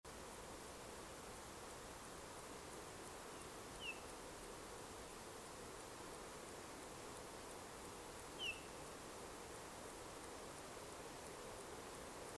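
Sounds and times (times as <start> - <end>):
background hiss: 0.1 - 12.3
Eurasian bullfinch Pyrrhula pyrrhula piping calls: 3.8 - 4.1, 8.4 - 8.8.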